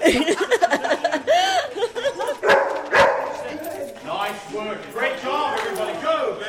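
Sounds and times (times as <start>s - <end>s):
lively chatter and chuckling: 0.0s - 6.4s
dog barking and yelping: 2.4s - 4.0s.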